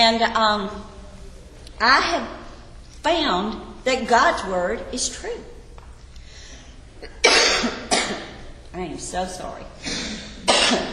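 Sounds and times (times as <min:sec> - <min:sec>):
speech: 0:00.0 - 0:00.9, 0:01.8 - 0:02.4, 0:03.0 - 0:05.5, 0:08.8 - 0:10.9
woman coughing in sympathy: 0:07.0 - 0:08.4, 0:09.8 - 0:10.9.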